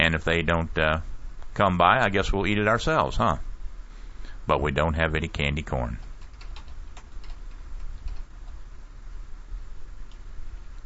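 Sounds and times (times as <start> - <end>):
speech: 0.1 - 3.5, 4.5 - 6.1
typing on a computer keyboard: 6.0 - 8.6.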